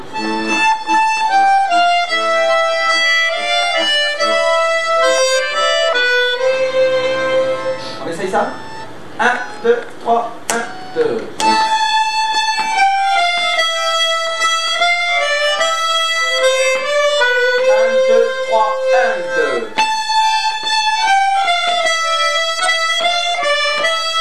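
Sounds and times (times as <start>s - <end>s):
violin playing second voice part: 0.0s - 9.8s, 10.5s - 24.2s.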